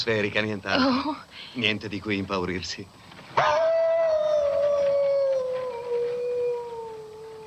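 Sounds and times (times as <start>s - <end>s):
speech: 0.0s - 3.6s
lone wolf howling: 3.4s - 7.4s.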